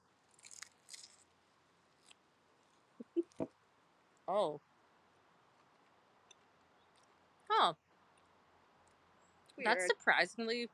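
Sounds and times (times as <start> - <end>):
biting and chewing a rice cake topped with peanut butter and pickles: 0.1 - 2.2
speech: 4.3 - 4.7, 9.6 - 10.7.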